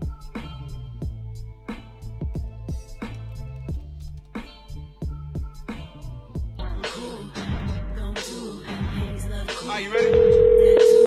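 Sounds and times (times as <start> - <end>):
rhythmic music with thumping beats: 0.0 - 11.0
telephone busy signal: 10.0 - 11.0.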